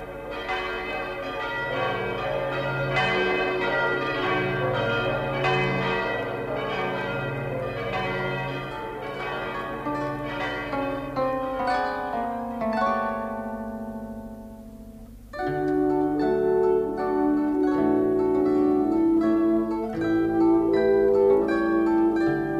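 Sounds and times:
new church bells ringing in a Lower Bavarian village: 0:00.0 - 0:14.3, 0:15.4 - 0:22.5.

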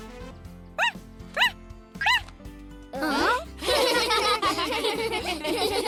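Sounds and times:
cartoon baby parrot barking like a dog: 0:00.8 - 0:02.3
laughter: 0:03.0 - 0:05.8.

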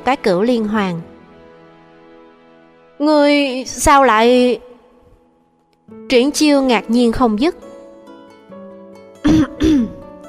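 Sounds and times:
speech: 0:00.0 - 0:01.1, 0:03.0 - 0:04.7, 0:05.9 - 0:07.6
light cough: 0:09.2 - 0:10.0.

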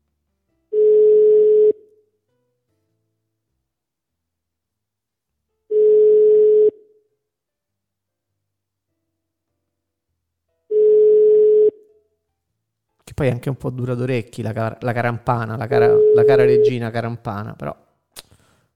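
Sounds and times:
ringback tone of an outgoing telephone call after dialling a number: 0:00.8 - 0:01.8, 0:05.7 - 0:06.8, 0:10.7 - 0:11.8, 0:15.8 - 0:16.8
speech: 0:13.2 - 0:17.8.

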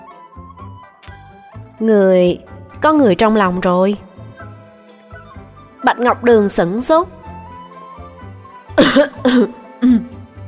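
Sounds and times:
speech: 0:01.8 - 0:04.1, 0:06.0 - 0:07.2, 0:09.0 - 0:10.0
dry coughing after choking on tea: 0:08.8 - 0:10.2.

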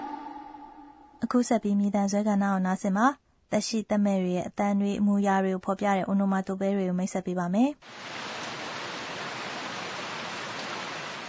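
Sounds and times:
speech: 0:01.2 - 0:08.3
steady rain falling: 0:07.8 - 0:11.2.

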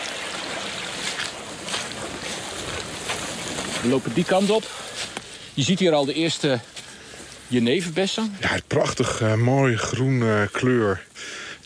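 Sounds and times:
brook running full and fast after rain: 0:00.0 - 0:05.3
speech: 0:03.8 - 0:06.7, 0:07.5 - 0:11.6.

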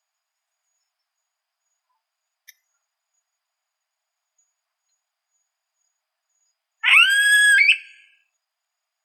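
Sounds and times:
yellow-headed caracara screaming: 0:06.8 - 0:08.0.

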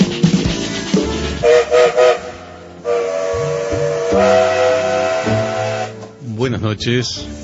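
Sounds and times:
steam train hissing: 0:00.0 - 0:06.0
steam train clanking setting off: 0:00.0 - 0:06.2
steam train whistle: 0:01.3 - 0:06.2
speech: 0:06.7 - 0:07.4.

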